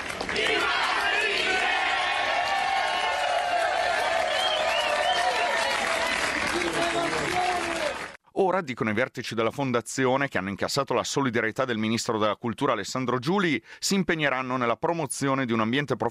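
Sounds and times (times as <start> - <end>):
large indoor crowd of theatre workers applauding: 0.0 - 8.2
speech: 8.5 - 16.1.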